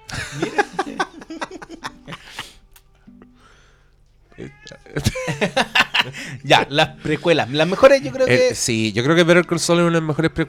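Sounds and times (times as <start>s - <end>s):
laughter: 0.0s - 2.8s, 4.7s - 8.9s
speech: 0.3s - 0.6s, 4.4s - 10.4s
cat meowing to get attention: 4.2s - 8.4s.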